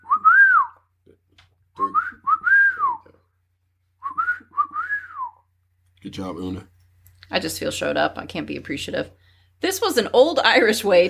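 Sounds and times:
person whistling swooping tones: 0:00.0 - 0:00.8, 0:01.8 - 0:03.1, 0:04.0 - 0:05.5
speech: 0:06.0 - 0:06.7, 0:07.3 - 0:11.0.

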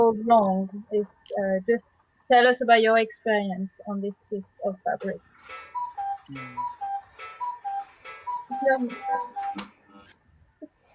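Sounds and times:
speech: 0:00.1 - 0:05.7, 0:06.3 - 0:06.8, 0:08.5 - 0:09.8
cuckoo clock calling its two-note cuckoo: 0:05.4 - 0:09.8
lower chiming tones: 0:05.7 - 0:09.6.

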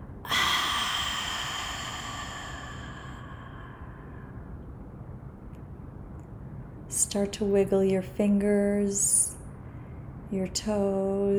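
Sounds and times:
deep breath drawn in and let out through the mouth: 0:00.3 - 0:04.5
speech: 0:07.1 - 0:09.2, 0:10.3 - 0:11.3.

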